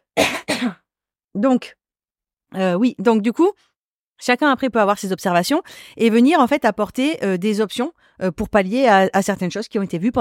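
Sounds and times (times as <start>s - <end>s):
person coughing: 0.2s - 0.9s
speech: 0.6s - 0.8s, 1.4s - 1.8s, 2.5s - 10.1s.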